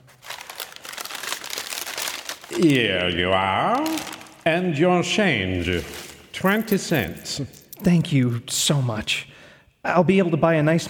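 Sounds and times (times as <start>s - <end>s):
plain paper bag crinkling as gifts are packed in a store: 0.0s - 3.0s, 3.7s - 4.5s, 5.5s - 7.3s
speech: 2.5s - 10.8s.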